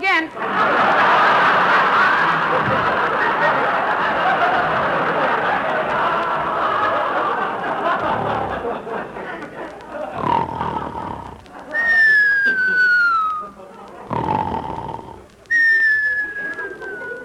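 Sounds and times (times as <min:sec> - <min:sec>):
laughter: 0:00.4 - 0:17.2
raspy snore: 0:08.0 - 0:08.7, 0:10.1 - 0:11.5, 0:14.0 - 0:15.3.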